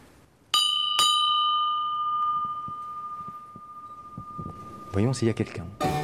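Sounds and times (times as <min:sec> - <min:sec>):
small entrance bell ringing: 0:00.6 - 0:05.6
soft shuffling: 0:02.2 - 0:05.8
speech: 0:05.0 - 0:05.9.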